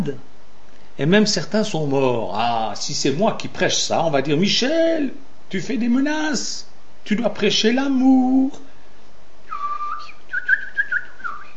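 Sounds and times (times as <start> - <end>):
speech: 0.0 - 0.3, 1.0 - 8.7
person whistling in imitation of little birds: 9.5 - 11.5.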